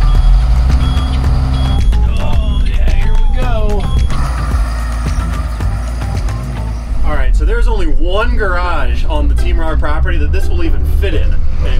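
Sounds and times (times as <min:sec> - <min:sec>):
bus backup alarm beeping: 0:00.0 - 0:07.0
bus engine rumbling while reversing: 0:00.0 - 0:11.7
speech: 0:08.4 - 0:11.7.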